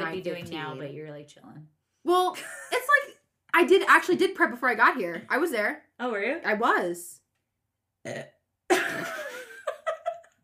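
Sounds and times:
speech: 0:00.1 - 0:02.8, 0:03.6 - 0:07.2, 0:08.0 - 0:09.2
long rumbling burp: 0:08.0 - 0:08.4
laughter: 0:08.7 - 0:10.4.

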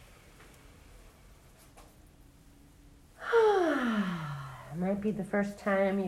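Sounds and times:
deep slow breathing in and out: 0:03.2 - 0:04.8
speech: 0:04.9 - 0:06.0.

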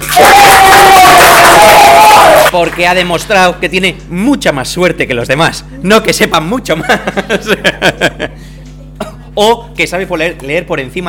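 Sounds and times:
audience cheering and clapping: 0:00.0 - 0:02.9
high whoop or whistle from the crowd: 0:00.1 - 0:02.5
speech: 0:02.5 - 0:08.6, 0:09.4 - 0:11.0
laughter: 0:06.8 - 0:08.5.

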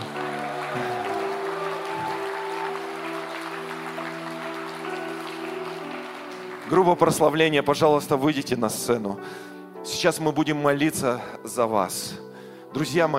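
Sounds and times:
large crowd applauding: 0:00.0 - 0:07.7
speech: 0:06.7 - 0:13.1.

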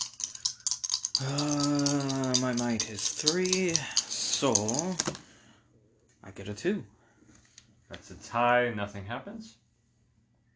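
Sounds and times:
three dice rolled for a might roll in a game clattering across a hard surface: 0:00.0 - 0:05.2
speech: 0:01.2 - 0:01.8, 0:02.5 - 0:05.3, 0:06.3 - 0:07.0, 0:07.9 - 0:09.6.

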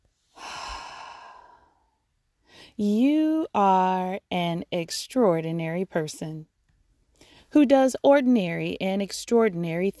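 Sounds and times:
person breathing in a guided-meditation breathing exercise: 0:00.3 - 0:02.8
speech: 0:02.8 - 0:06.5, 0:07.5 - 0:09.9.

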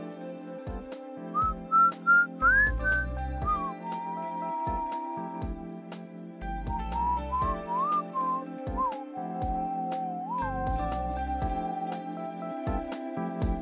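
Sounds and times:
soft instrumental backing with steady low pulses: 0:00.0 - 0:13.5
person whistling a slow wandering melody: 0:01.4 - 0:05.6, 0:06.7 - 0:12.9.

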